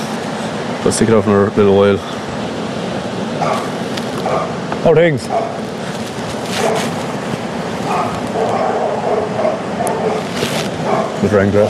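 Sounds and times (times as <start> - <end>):
steady outdoor noise: 0.0 - 11.6
speech: 0.8 - 2.3, 4.8 - 5.7, 10.9 - 11.6
dogs barking and yipping at a distance: 3.2 - 11.6.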